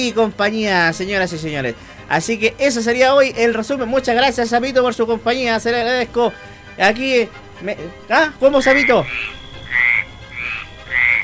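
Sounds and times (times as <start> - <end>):
speech: 0.0 - 9.4
toad croaking: 8.5 - 11.2.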